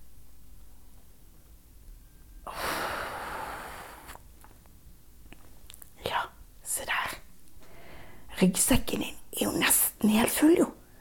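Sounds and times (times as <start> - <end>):
deep inhale through the nose: 2.5 - 4.2, 7.6 - 8.3
speech: 8.4 - 10.8.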